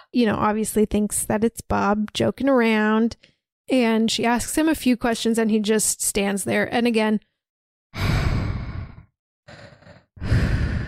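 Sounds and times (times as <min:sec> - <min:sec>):
speech: 0:00.1 - 0:07.3
voice imitating heavy mouth breathing of a masked killer: 0:08.0 - 0:10.8.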